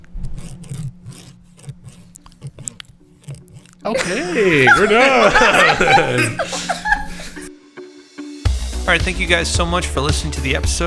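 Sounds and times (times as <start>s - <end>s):
crunchy chewing of deep fried shrimp with marinara sauce: 0.0s - 6.1s
speech: 3.8s - 6.6s, 8.9s - 10.8s
laughter: 3.9s - 7.5s.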